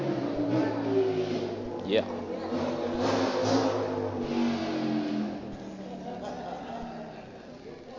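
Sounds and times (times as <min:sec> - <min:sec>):
loud motorbike engine revving: 0:00.0 - 0:05.6
speech: 0:01.9 - 0:02.2
laughter: 0:05.5 - 0:07.7.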